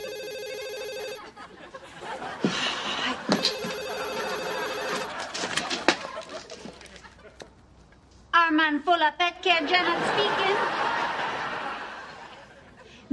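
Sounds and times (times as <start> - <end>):
telephone ringing with electronic trill: 0.0 - 1.3, 3.2 - 5.2
laughter: 1.1 - 7.6, 9.6 - 13.0
speech: 8.7 - 11.2.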